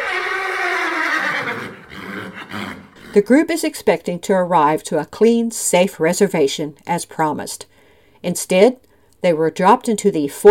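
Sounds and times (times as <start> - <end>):
horse neighing with a wavering descending pitch: 0.0 - 3.2
speech: 3.1 - 10.4.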